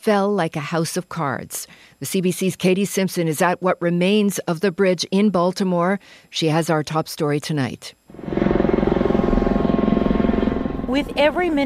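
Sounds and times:
speech: 0.0 - 8.5, 10.9 - 11.6
search-and-rescue helicopters circling over a collapsed bridge site: 8.2 - 11.6.

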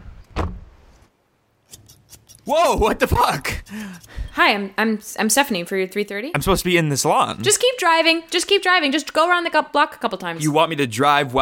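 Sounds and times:
car door opening with a mechanical clunk: 0.2 - 0.7
speech: 2.4 - 11.3.

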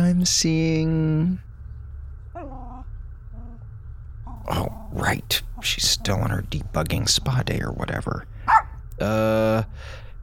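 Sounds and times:
speech: 0.1 - 1.5, 4.4 - 8.3, 9.0 - 10.0
dog barking: 8.5 - 8.8.

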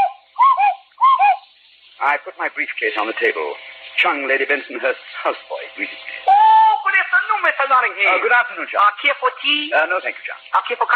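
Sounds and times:
cuckoo clock striking: 0.0 - 1.6
speech: 2.0 - 6.2, 7.4 - 10.9.

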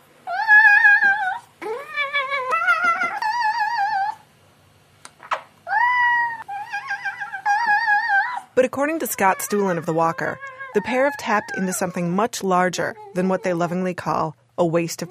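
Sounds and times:
cat yodeling in warbling yowls: 0.3 - 4.2, 5.7 - 8.5, 9.2 - 12.0
speech: 8.8 - 15.0.

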